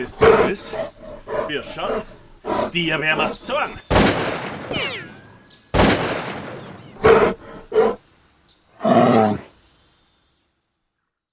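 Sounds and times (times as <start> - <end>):
bear roaring and growling: 0.0 - 3.5, 6.9 - 8.0, 8.8 - 9.5
speech: 0.0 - 5.0.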